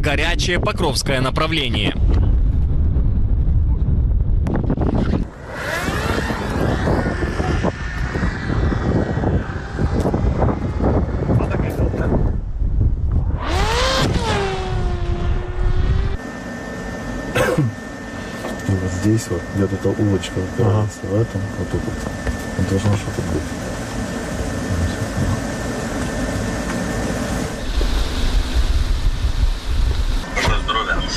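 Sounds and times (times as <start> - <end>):
speech: 0.0 - 2.2, 19.2 - 23.7
heavy wind buffeting on a flying drone: 0.0 - 16.9, 26.2 - 30.3
fixed-wing reconnaissance drone engine whine: 0.0 - 31.1.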